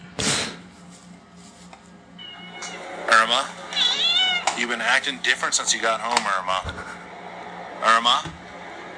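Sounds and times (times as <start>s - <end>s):
quiet shuffling: 0.8s - 2.0s
cat meowing: 2.2s - 2.9s, 3.7s - 4.6s
speech: 3.3s - 3.6s, 4.6s - 7.0s, 7.8s - 8.4s.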